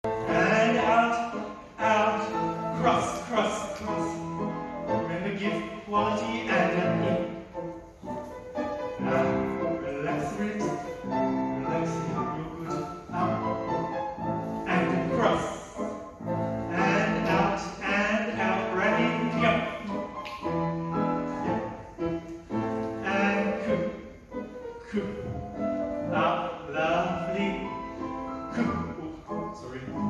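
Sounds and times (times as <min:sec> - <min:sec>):
ballet rehearsal music in a ballet hall: 0:00.0 - 0:30.0.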